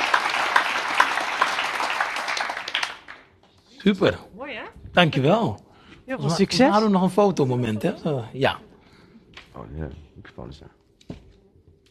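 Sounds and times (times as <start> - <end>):
audience applause: 0.0 - 3.4
speech: 3.8 - 4.3, 5.0 - 8.7, 9.6 - 10.8.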